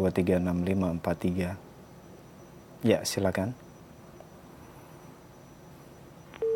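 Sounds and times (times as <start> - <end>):
speech: 0.0 - 1.7, 2.8 - 3.6
phone line hissing faintly with static: 0.0 - 6.5
loud steady electronic busy tone: 1.1 - 6.5
phone line click: 6.2 - 6.5.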